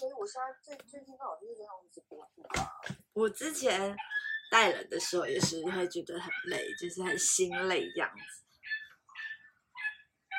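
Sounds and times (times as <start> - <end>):
speech: 0.2 - 8.4
dog barking in short high-pitched yelps: 3.8 - 10.3.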